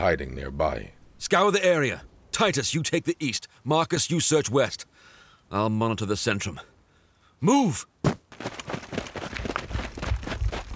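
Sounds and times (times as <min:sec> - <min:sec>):
speech: 0:00.0 - 0:06.7, 0:07.4 - 0:08.7
soldier's running footsteps: 0:08.1 - 0:10.7.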